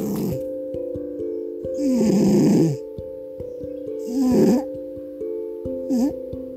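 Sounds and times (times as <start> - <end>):
cat snoring with rasping breaths: 0.0 - 0.5, 1.8 - 2.8, 4.0 - 4.7, 5.9 - 6.2
steady tonal hum: 0.0 - 6.5.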